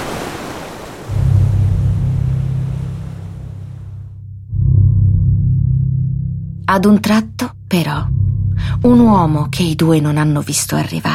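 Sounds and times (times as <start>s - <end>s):
wind: 0.0s - 3.8s
sea surf: 0.0s - 4.0s
deep constant low rumble: 1.1s - 11.1s
speech: 6.7s - 11.1s.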